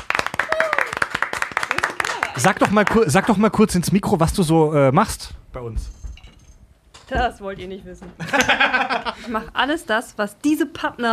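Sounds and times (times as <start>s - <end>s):
small group clapping: 0.0s - 3.8s
brief cheer: 0.4s - 1.2s
speech: 2.4s - 6.0s, 7.1s - 11.1s
laughter: 8.2s - 9.5s.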